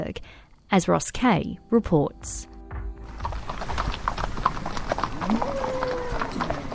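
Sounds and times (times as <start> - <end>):
speech: 0.1 - 2.5
several horses' hooves clip-clopping on hard ground: 3.0 - 6.7
faint horse whinny: 3.7 - 6.7
murmur of riders and cattle: 4.2 - 6.7.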